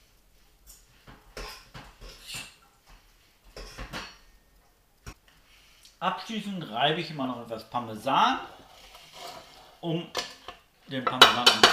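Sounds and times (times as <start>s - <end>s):
faint hiss: 0.0s - 11.7s
speech: 6.0s - 8.6s, 9.8s - 10.2s, 10.9s - 11.7s
utensil clinking and scraping against a hot pot while stirring food: 8.3s - 11.7s.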